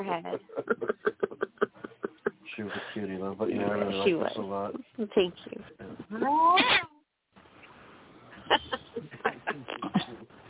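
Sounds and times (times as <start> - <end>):
speech: 0.0 - 0.9, 2.6 - 6.9
laughter: 0.2 - 2.9, 8.4 - 10.3
cat meowing angrily: 6.2 - 6.9.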